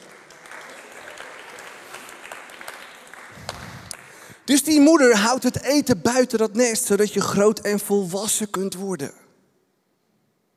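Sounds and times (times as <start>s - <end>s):
crowd clapping: 0.0s - 4.5s
speech: 4.5s - 9.2s.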